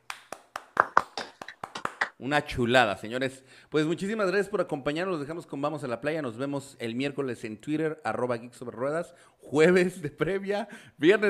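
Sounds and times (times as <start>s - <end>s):
applause from a few people: 0.0s - 2.2s
speech: 2.2s - 11.2s.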